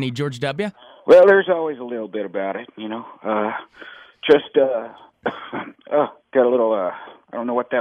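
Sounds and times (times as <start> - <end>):
speech: 0.0 - 7.8
person coughing: 5.3 - 5.8.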